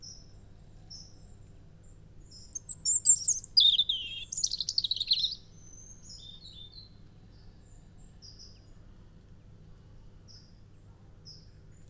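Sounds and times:
European robin Erithacus rubecula song: 2.3 - 6.8.

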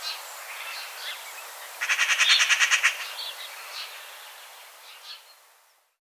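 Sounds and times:
Eurasian magpie giving harsh dry rattling chatters: 1.8 - 3.1.

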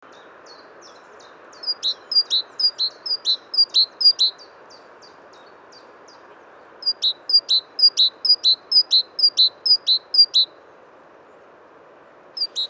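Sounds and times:
great tit Parus major calling: 1.5 - 4.5, 6.8 - 10.5, 12.4 - 12.6.

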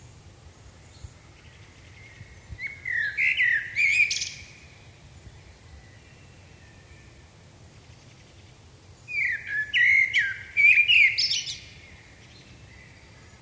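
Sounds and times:
common blackbird Turdus merula singing: 0.9 - 4.8, 9.1 - 13.3.

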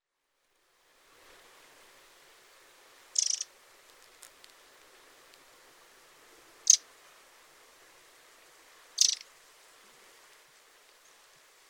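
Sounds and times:
soft hiss: 0.0 - 11.6
Eurasian wren giving a short high buzzy rattle of rapid ticks: 3.1 - 3.5, 6.6 - 6.8, 9.0 - 9.3.

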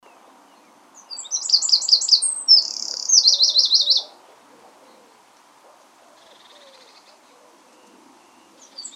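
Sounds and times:
Eurasian wren Troglodytes troglodytes singing: 0.0 - 4.2, 6.2 - 8.9
faint background noise: 0.0 - 8.9.

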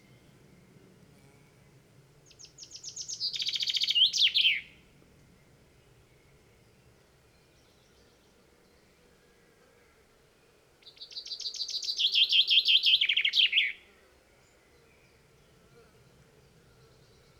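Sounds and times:
common chaffinch Fringilla coelebs singing: 2.3 - 4.8, 10.8 - 13.8.

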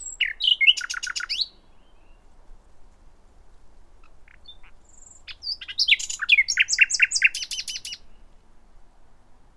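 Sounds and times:
common nightingale Luscinia megarhynchos singing: 0.0 - 2.3, 4.0 - 8.3.

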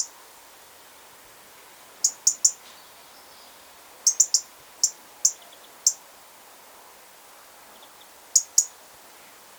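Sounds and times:
soft low hiss: 0.0 - 9.5
European robin ticking calls, Erithacus rubecula: 2.0 - 2.7, 4.0 - 6.0, 7.8 - 8.8.

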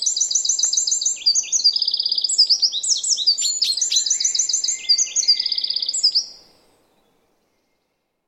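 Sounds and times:
Eurasian wren singing: 0.0 - 6.4.

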